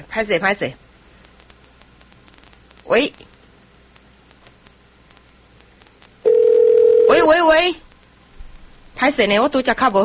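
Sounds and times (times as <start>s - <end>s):
speech: 0.0s - 0.8s, 2.9s - 3.3s, 7.3s - 7.8s, 9.0s - 10.0s
telephone dial tone as a call is placed: 6.3s - 7.3s.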